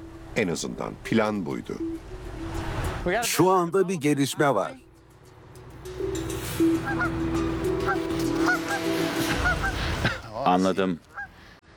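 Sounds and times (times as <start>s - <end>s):
speech: 0.4s - 2.4s, 3.0s - 4.9s, 10.4s - 11.1s
goose honking: 6.6s - 10.3s, 11.1s - 11.3s.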